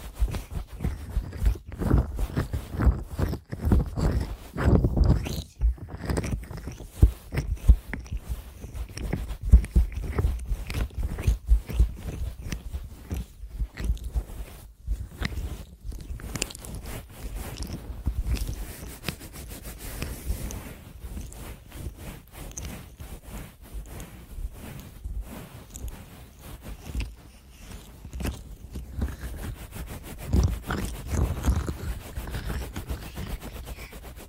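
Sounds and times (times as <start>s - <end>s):
rustling ear cleaning with scratching and scraping: 0.0s - 34.2s.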